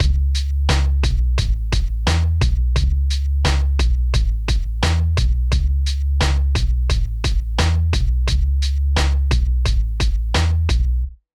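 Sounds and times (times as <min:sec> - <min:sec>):
snare drum: 0:00.0 - 0:02.6, 0:03.5 - 0:05.4, 0:06.2 - 0:08.4, 0:09.0 - 0:10.8
kick drum: 0:00.0 - 0:05.8, 0:06.5 - 0:08.6, 0:09.2 - 0:11.2
hi-hat: 0:00.0 - 0:10.9.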